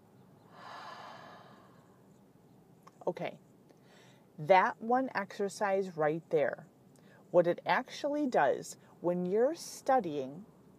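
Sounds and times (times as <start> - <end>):
slow exhale during a guided breathing exercise: 0.5 - 2.0
speech: 3.1 - 3.5, 4.4 - 6.7, 7.3 - 10.5.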